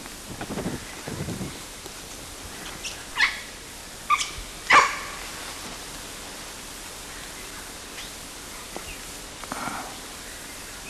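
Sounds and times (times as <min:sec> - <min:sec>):
low rustling: 0:00.0 - 0:10.8
dog barking: 0:04.7 - 0:05.2.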